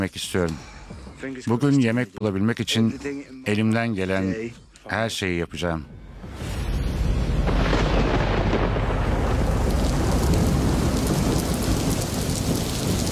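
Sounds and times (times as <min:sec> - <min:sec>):
speech: 0:00.0 - 0:06.5
heavy rain pouring: 0:07.4 - 0:13.1.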